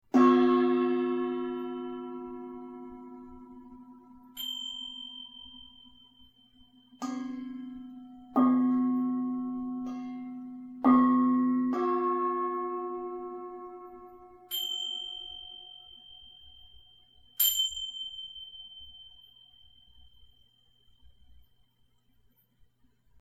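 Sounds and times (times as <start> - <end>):
gong tingsha: 0.1 - 22.6.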